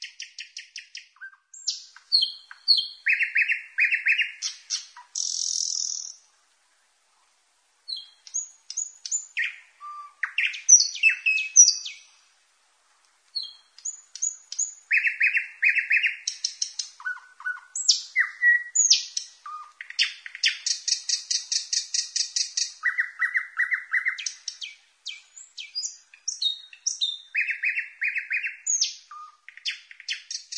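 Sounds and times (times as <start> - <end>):
nightingale singing: 0.0 - 6.3, 7.8 - 12.3, 13.3 - 30.5.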